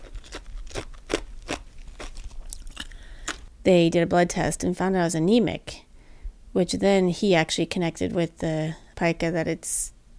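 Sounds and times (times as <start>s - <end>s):
ice being chewed crunching: 0.0s - 3.5s
speech: 3.6s - 5.8s, 6.6s - 10.0s.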